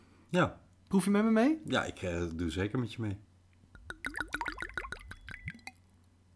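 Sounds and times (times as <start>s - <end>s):
speech: 0.3s - 3.3s
Spanish date liqueur glugging from a bottle into a glass: 3.8s - 5.8s.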